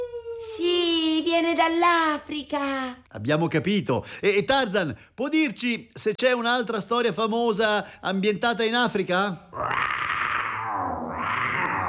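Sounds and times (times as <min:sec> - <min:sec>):
speech: 0:01.4 - 0:10.2
person imitating a lion's roar: 0:09.5 - 0:11.8.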